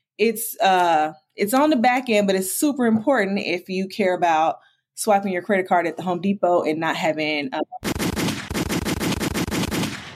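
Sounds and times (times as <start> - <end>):
speech: 0.2 - 7.9
gunshot sound effect of rapid automatic fire: 7.8 - 10.1.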